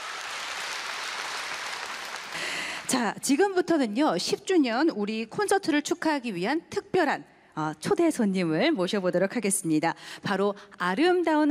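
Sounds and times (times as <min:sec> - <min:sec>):
audience applause at an anniversary concert: 0:00.0 - 0:02.9
speech: 0:02.9 - 0:11.4.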